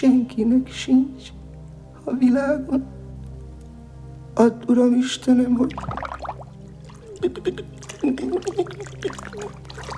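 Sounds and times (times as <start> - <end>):
speech: 0.0 - 1.4, 2.1 - 3.0, 4.4 - 6.1, 7.2 - 9.9
water sloshing and splashing: 5.6 - 9.9.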